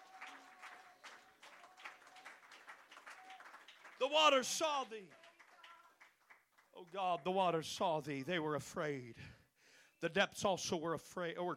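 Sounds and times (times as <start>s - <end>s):
audience clapping in a steady rhythmic beat: 0.0s - 7.6s
speech: 4.0s - 5.2s, 6.8s - 9.4s, 10.0s - 11.5s.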